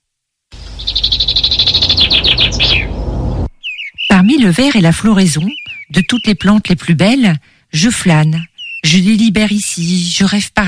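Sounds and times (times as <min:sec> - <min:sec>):
song thrush singing: 0:00.6 - 0:06.6, 0:08.2 - 0:09.1
speech: 0:04.4 - 0:10.6.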